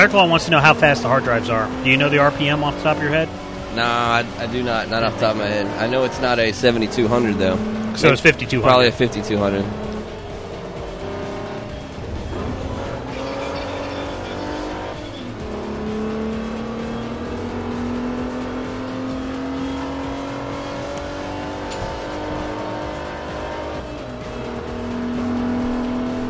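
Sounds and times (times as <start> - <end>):
speech: 0.0 - 9.8
racing car engine revving on a track in a video game: 0.0 - 26.2.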